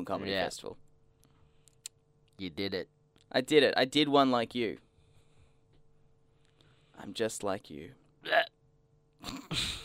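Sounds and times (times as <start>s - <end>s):
speech: 0.0s - 0.9s, 2.4s - 4.8s, 7.0s - 8.5s
person burping: 8.2s - 8.6s.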